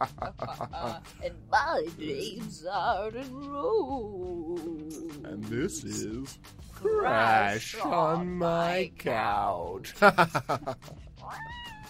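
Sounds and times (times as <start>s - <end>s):
laughter: 0.0s - 1.2s, 10.0s - 10.9s
speech: 0.0s - 11.6s
black cat meowing: 11.2s - 11.8s.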